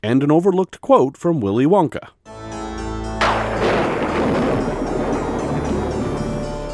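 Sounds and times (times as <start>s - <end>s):
speech: 0.0s - 2.2s
stock thunderclap sound effect rumbling: 3.2s - 6.7s.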